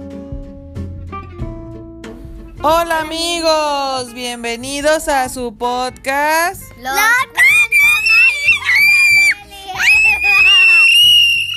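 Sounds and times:
speech: 2.6 - 7.8
child screaming shrilly: 7.0 - 11.5.

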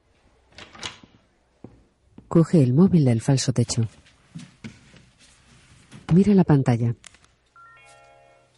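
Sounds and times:
faint room hiss: 0.0 - 8.5
classroom door being closed at a high school: 0.5 - 1.2
speech: 2.3 - 4.0, 6.1 - 7.0.

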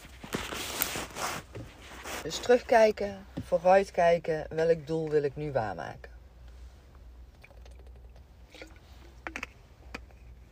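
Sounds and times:
low hiss: 0.0 - 10.5
speech: 2.2 - 6.1
person sipping water: 7.3 - 10.5
person swallowing water: 7.4 - 10.5.

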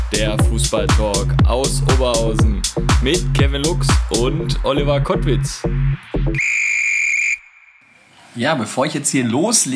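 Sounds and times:
speech: 0.1 - 6.8, 8.4 - 9.7
loud shrill sustained whistle blast: 6.4 - 8.0.

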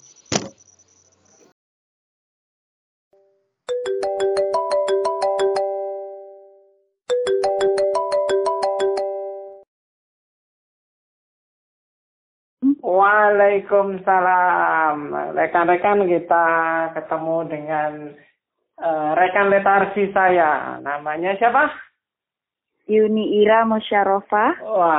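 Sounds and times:
telephone ringback tone during an outgoing call: 3.7 - 9.6
speech: 13.2 - 21.9, 22.9 - 24.9.

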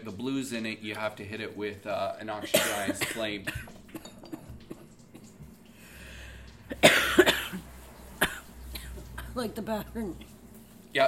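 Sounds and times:
speech: 0.0 - 4.1, 9.4 - 10.3
harsh rough coughing: 2.4 - 5.3, 6.7 - 7.6.

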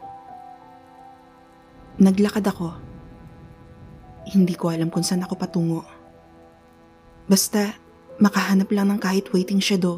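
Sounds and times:
faint sustained humming tones: 0.0 - 9.9
steady rain: 1.7 - 5.4
speech: 2.0 - 2.9, 4.3 - 6.0, 7.3 - 9.9.

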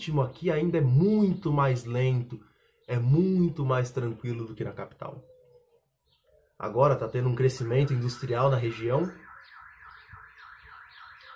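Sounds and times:
speech: 0.0 - 5.4, 6.6 - 9.2
car alarm wailing in up-and-down siren pattern: 7.0 - 11.3.

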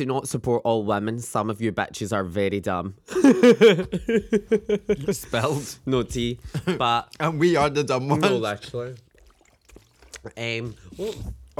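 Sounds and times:
speech: 0.0 - 9.0, 10.2 - 11.5
laughter: 3.1 - 8.8
water being poured or spilled: 6.2 - 11.5.

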